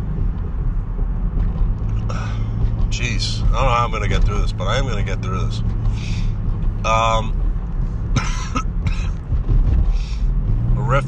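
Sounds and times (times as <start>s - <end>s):
steady low rumble: 0.0s - 11.0s
speech: 3.0s - 7.4s, 10.9s - 11.0s
person coughing: 8.2s - 9.2s.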